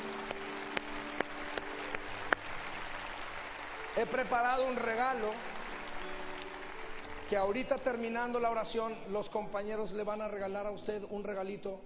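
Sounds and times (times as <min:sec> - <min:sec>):
crowd applauding to congratulate people who came to the front: 0:00.0 - 0:08.9
speech: 0:04.0 - 0:05.5, 0:07.3 - 0:11.8.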